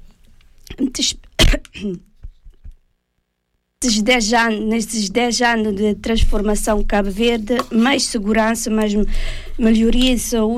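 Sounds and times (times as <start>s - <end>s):
speech: 0.8s - 2.1s, 3.8s - 10.5s
person clearing throat: 1.4s - 2.1s
person coughing: 1.4s - 2.1s.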